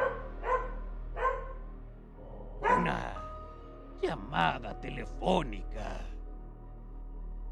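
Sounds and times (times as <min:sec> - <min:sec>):
dog barking: 0:00.0 - 0:01.6, 0:02.6 - 0:03.2
speech: 0:04.0 - 0:06.1.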